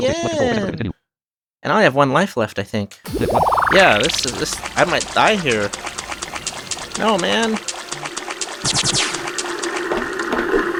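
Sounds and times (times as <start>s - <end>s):
speech: 0.0s - 0.9s, 1.6s - 6.0s, 7.0s - 9.0s
sustained tones: 3.1s - 8.7s
video game water jet streams gushing: 3.1s - 10.7s.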